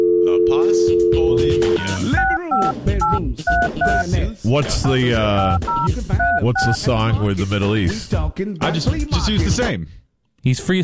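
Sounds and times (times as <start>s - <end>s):
touch-tone dialing of a home phone number: 0.0s - 4.1s, 5.5s - 6.8s
speech: 2.8s - 10.8s.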